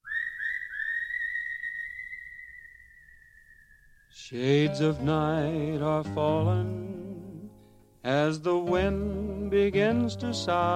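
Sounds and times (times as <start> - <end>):
clear sustained whistled melody at the opening of a song: 0.0 - 4.3
speech: 4.2 - 7.0, 8.0 - 10.7.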